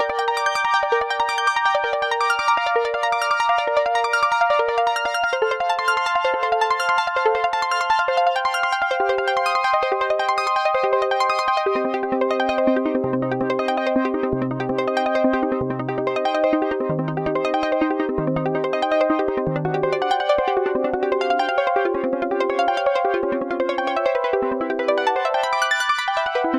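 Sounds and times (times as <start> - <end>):
Roland Juno-60 synthesizer arpeggio: 0.1 - 26.5.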